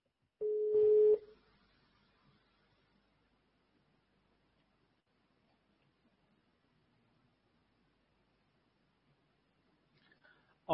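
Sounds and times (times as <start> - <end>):
electronic telephone tone of a call to a doctor: 0.4 - 1.3.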